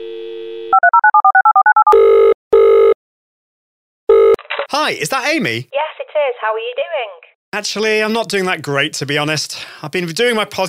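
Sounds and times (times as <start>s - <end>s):
telephone dial tone: 0.0s - 3.0s, 4.1s - 4.4s
touch-tone speed dialing beeps: 0.7s - 3.0s
speech: 4.8s - 10.6s.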